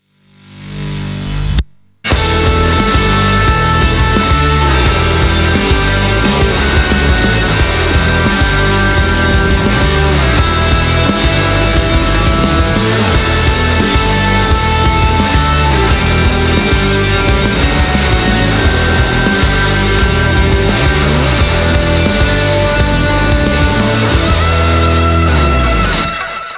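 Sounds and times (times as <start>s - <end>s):
guitar playing: 2.1s - 26.5s.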